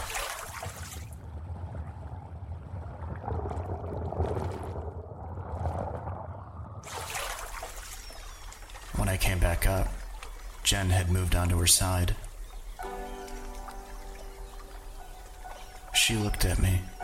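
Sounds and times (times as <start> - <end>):
person wading and splashing in water: 0.0 - 1.1, 6.8 - 8.9
person diving under water: 0.0 - 8.8
low rumbling underwater wash: 0.0 - 17.0
speech: 9.3 - 10.0, 10.7 - 12.2, 16.1 - 16.9.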